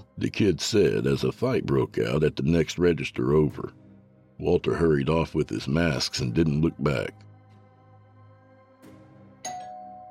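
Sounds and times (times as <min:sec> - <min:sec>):
speech: 0:00.2 - 0:03.8, 0:04.4 - 0:07.3
two-tone doorbell chime: 0:09.4 - 0:10.0.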